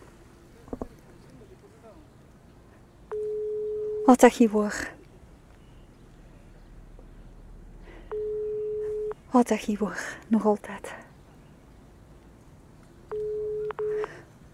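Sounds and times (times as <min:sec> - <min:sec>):
faint hiss: 0:00.0 - 0:14.5
telephone ringing tone down the line during outgoing call: 0:03.1 - 0:04.3, 0:08.1 - 0:09.2, 0:13.1 - 0:14.2
speech: 0:04.1 - 0:05.0, 0:09.3 - 0:11.0.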